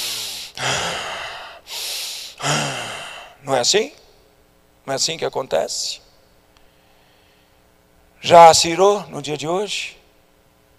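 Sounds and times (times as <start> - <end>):
person snorting angrily through the nose: 0.0 - 3.3
speech: 3.4 - 4.0, 4.9 - 6.0, 8.2 - 10.0.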